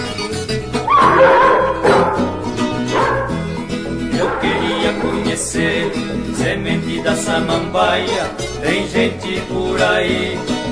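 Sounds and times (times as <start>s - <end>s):
steady musical backing: 0.0s - 10.6s
dog barking and yipping: 0.9s - 5.5s
speech: 7.0s - 10.6s.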